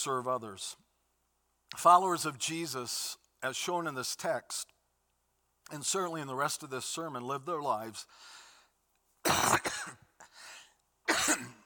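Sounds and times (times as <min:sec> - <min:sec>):
speech: 0:00.0 - 0:00.8, 0:01.7 - 0:04.7, 0:05.7 - 0:08.4
person coughing: 0:09.2 - 0:11.6.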